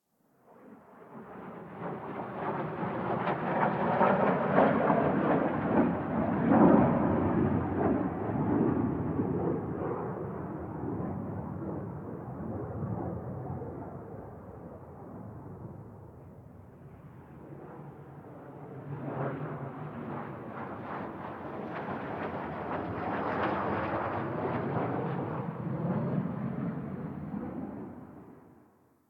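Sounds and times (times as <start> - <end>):
distant fighter jet: 0.4 - 28.7.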